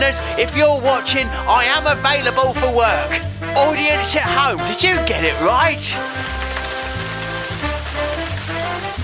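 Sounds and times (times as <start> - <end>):
speech: 0.0 - 6.4
steady rain pattering on a surface: 5.9 - 9.0.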